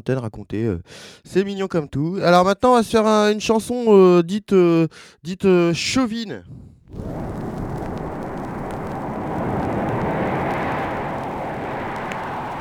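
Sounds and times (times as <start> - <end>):
speech: 0.0 - 7.4
propeller plane engine roar overhead: 7.0 - 12.5.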